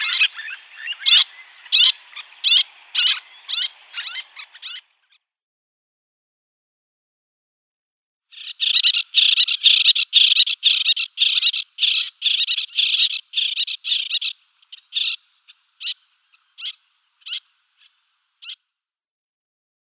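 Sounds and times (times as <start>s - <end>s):
Little tern giving sharp high chattering calls and rasping kik notes: 0.0s - 5.2s, 8.3s - 18.6s.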